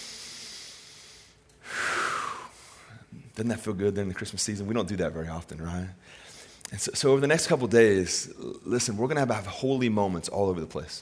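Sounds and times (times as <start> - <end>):
deep breath: 0.0 - 3.2, 6.0 - 6.6
speech: 3.4 - 11.0.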